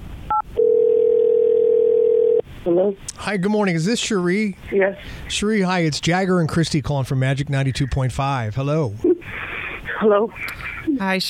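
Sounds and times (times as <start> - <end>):
telephone dial tone: 0.3 - 2.4
speech: 2.7 - 11.2.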